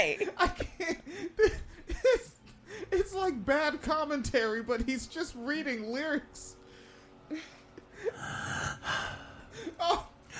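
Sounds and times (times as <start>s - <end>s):
speech: 0.0s - 1.5s, 3.4s - 6.6s, 7.3s - 10.3s
man breathing heavily in a played video clip: 2.6s - 3.0s, 6.6s - 10.3s.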